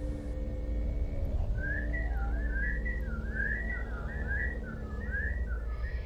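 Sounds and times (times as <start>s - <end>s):
steady low droning background: 0.0s - 6.0s
eerie whistling in a slow sliding tune: 1.3s - 6.0s.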